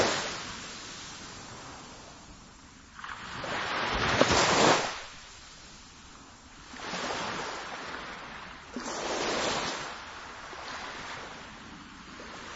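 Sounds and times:
gentle surf along a river shore: 0.0s - 12.5s
light wind: 0.0s - 12.5s.

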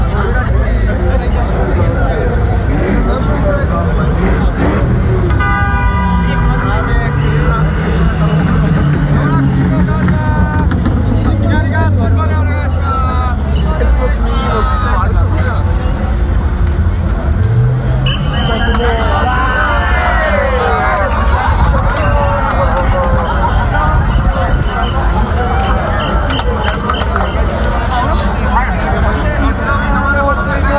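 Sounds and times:
dense Halloween crowd chattering at a busy city crossing: 0.0s - 30.7s
low vehicle engine rumbling: 0.0s - 30.7s
people shouting in a Halloween crowd: 18.2s - 27.5s.

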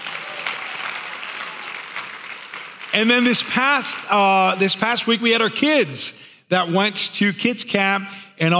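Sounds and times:
crowd applauding: 0.0s - 4.8s
speech: 2.9s - 8.5s.

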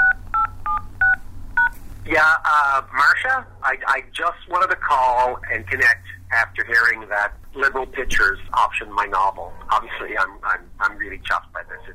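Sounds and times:
DTMF telephone keypad beeps entering a voicemail password: 0.0s - 1.7s
low hum: 0.0s - 11.9s
speech: 2.2s - 11.9s.

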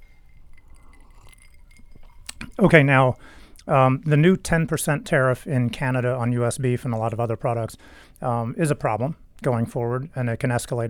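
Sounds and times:
glasses of bourbon clinking in a toast: 0.0s - 2.6s
low steady hum: 0.0s - 10.8s
speech: 2.6s - 10.8s.

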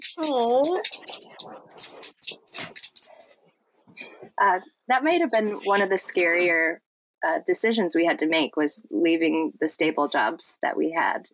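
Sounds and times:
dog scratching: 0.0s - 3.3s
speech: 0.2s - 1.0s, 4.4s - 11.3s.

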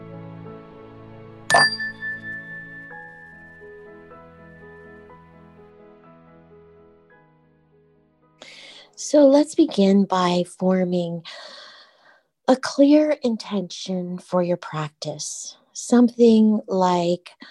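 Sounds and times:
bright metallic meditation chime struck: 1.5s - 4.9s
soft sustained tonal background: 1.5s - 5.2s
speech: 1.6s - 1.8s, 9.0s - 11.5s, 12.5s - 17.4s.

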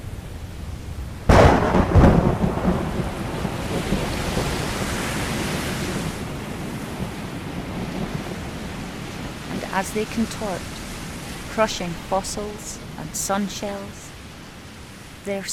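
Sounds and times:
rain-like hiss: 0.0s - 15.5s
steady storm wind: 0.0s - 15.5s
loud thunderclap rolling into a long rumbling roar: 1.2s - 9.5s
speech: 9.8s - 10.8s, 11.6s - 14.0s, 15.2s - 15.5s.

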